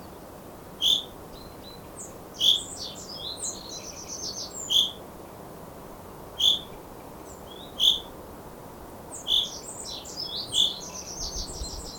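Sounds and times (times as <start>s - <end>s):
Fringilla coelebs calling: 0.8s - 1.1s, 2.4s - 5.0s, 6.4s - 6.8s, 7.5s - 8.1s, 9.2s - 11.9s.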